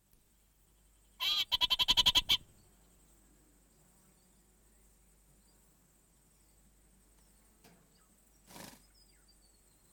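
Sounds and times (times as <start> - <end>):
orange-fronted parakeet giving harsh grating chattering calls: 1.2 - 2.4.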